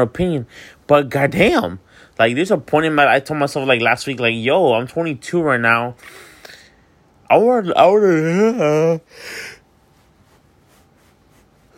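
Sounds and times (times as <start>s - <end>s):
speech: 0.0s - 6.3s, 7.3s - 9.6s
faint hiss: 0.0s - 11.7s
person yawning with breathy rush of air: 8.1s - 9.6s.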